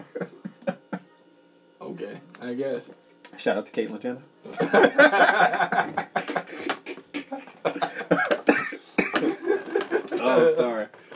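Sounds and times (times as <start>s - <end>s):
person chuckling: 0.0s - 1.1s, 4.5s - 10.2s
speech: 2.0s - 6.6s
person coughing close to the microphone: 6.1s - 9.3s.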